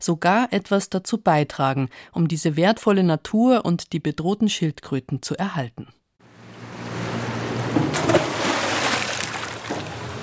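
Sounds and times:
speech: 0.0 - 6.0
water sloshing: 6.7 - 10.2
anchor splashing into shallow water off a sandy beach: 7.6 - 10.2.

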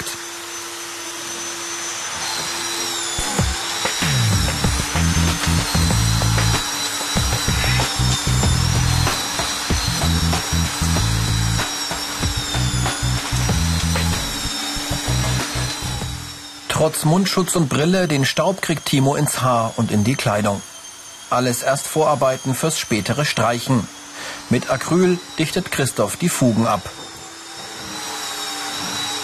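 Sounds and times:
heavy drywall sanding machine with attached vacuum grinding: 0.0 - 29.2
vacuum-like hiss of sander: 0.0 - 29.2
rough rubbing strokes of sander: 4.0 - 16.4
speech: 16.8 - 20.7, 21.3 - 27.0.

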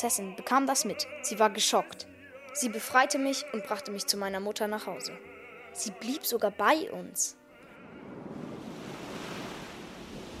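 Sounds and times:
speech: 0.0 - 8.0
rough sea surf churning: 7.7 - 10.3
wind roaring over the sea: 7.7 - 10.3.

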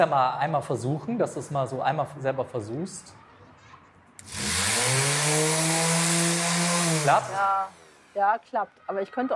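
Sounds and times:
speech: 0.0 - 3.2, 7.1 - 9.3
electric sander sanding lacquer off a wooden door: 4.2 - 8.2.

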